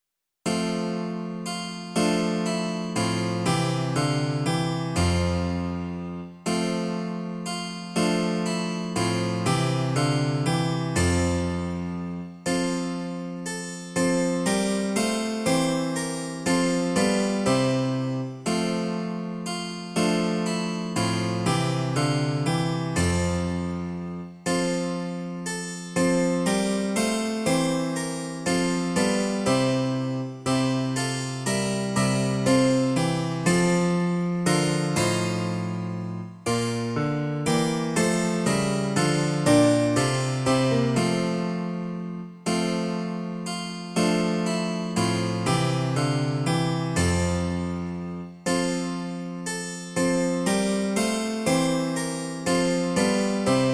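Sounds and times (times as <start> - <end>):
piano: 0.4 - 53.7
harpsichord: 0.5 - 53.7.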